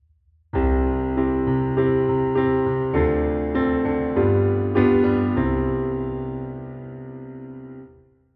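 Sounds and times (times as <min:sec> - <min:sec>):
C Dm G7 C chord progression: 0:00.6 - 0:07.8.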